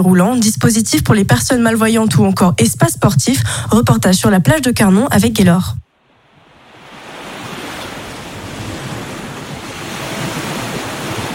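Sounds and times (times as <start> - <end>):
speech: 0.0 - 5.8
ocean surf breaking on the beach at Carnon on the Hérault coast, France: 5.9 - 11.3.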